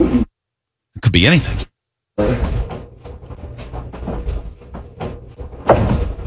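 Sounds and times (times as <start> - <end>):
speech: 1.2 - 2.6
mirror knocking against a wall: 2.6 - 6.2.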